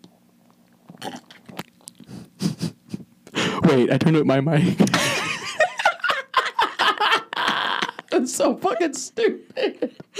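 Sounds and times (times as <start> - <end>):
person sipping and swallowing a white mocha soy latte: 0.0 - 2.4
speech: 3.7 - 5.1, 8.4 - 10.1
laughter: 4.6 - 8.9.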